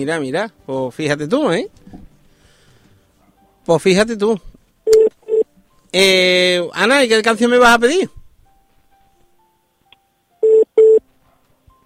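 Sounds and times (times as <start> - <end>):
speech: 0.0 - 1.8, 3.7 - 5.2, 5.9 - 8.2
electronic telephone dialing tones of an incoming call: 4.9 - 5.4, 10.4 - 11.0.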